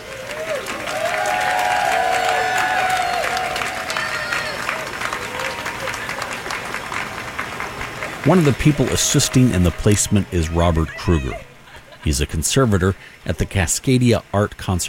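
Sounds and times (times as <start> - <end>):
scattered whoops from a crowd: 0.0 - 6.2
crowd of a few hundred people applauding outdoors on a sunny morning: 0.0 - 11.4
overlapping voices of a crowd: 0.0 - 13.6
speech: 8.2 - 14.8.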